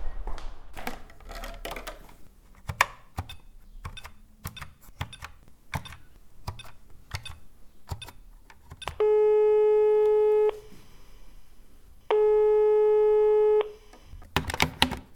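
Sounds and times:
telephone ringing with long steady electronic tones: 8.8 - 10.8, 12.1 - 13.9.

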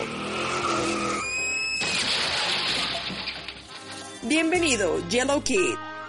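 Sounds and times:
car tires screeching: 0.0 - 2.6
car tires skidding across the road: 0.0 - 2.9
speech: 4.3 - 5.9.

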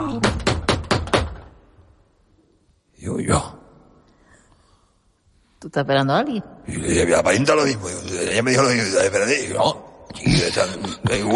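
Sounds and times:
sharp knocks imitating a door knock: 0.0 - 1.6
speech: 5.8 - 11.3.

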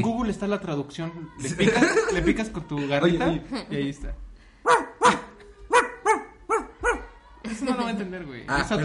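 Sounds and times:
speech: 0.0 - 5.2, 7.5 - 8.8
laughter: 1.5 - 3.4
dog barking: 4.6 - 7.2.

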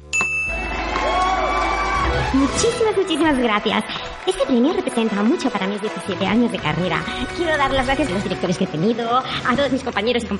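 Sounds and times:
small bell ding: 0.0 - 0.8
crowd cheering: 0.4 - 7.1
speech: 2.3 - 10.3.

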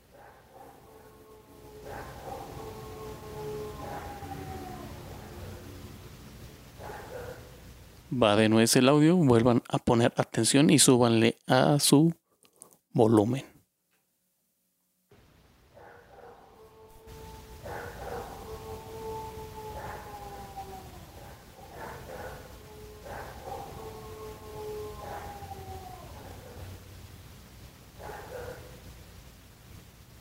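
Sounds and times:
steady hiss: 0.0 - 30.1
dog howling in long wavering tones, higher and lower pitch: 0.1 - 7.6, 15.8 - 26.9, 28.0 - 28.8
speech: 8.1 - 12.2, 13.0 - 13.5.

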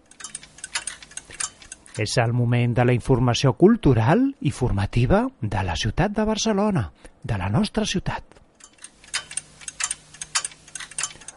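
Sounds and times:
clock ticking: 0.0 - 2.0, 8.6 - 11.3
speech: 2.0 - 8.3.

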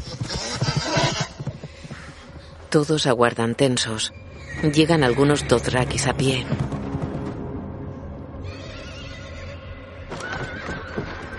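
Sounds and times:
riderless horse neighing with shrill whinnies: 0.0 - 1.4, 4.3 - 5.8, 8.4 - 11.3
riderless horse hoofbeats running toward a fortress: 0.0 - 3.4, 4.4 - 7.5, 8.4 - 11.3
speech: 2.7 - 6.7.

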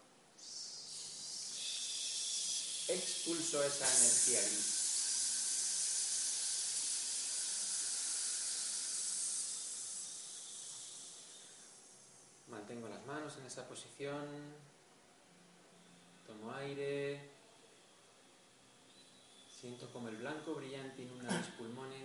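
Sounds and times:
person exhaling a hiss of breath through the teeth: 0.4 - 12.5
speech: 2.9 - 4.8, 12.7 - 14.8, 16.3 - 17.4, 19.6 - 22.0.

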